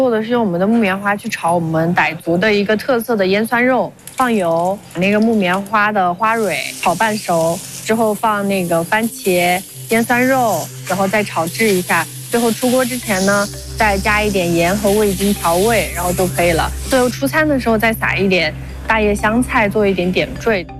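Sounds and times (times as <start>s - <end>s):
person talking: 0.1s - 20.7s
kapok stamens sizzling in hot oil while stir-fried: 4.0s - 18.8s.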